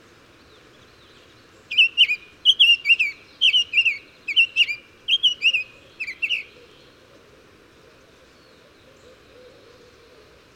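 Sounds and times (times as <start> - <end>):
soft constant hiss: 0.0 - 10.5
bird song: 0.4 - 7.0, 8.3 - 10.0.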